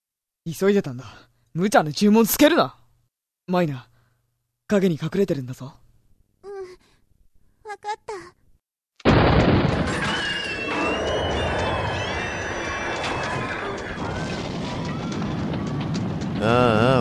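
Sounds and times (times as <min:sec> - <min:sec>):
speech: 0:00.4 - 0:02.8, 0:03.5 - 0:03.9, 0:04.7 - 0:05.8, 0:07.7 - 0:08.4, 0:16.4 - 0:16.9
crackling debris: 0:09.0 - 0:16.9
loud explosion: 0:09.0 - 0:16.9
roaring rumble after an explosion: 0:09.1 - 0:16.9
high whining tones: 0:09.9 - 0:15.3.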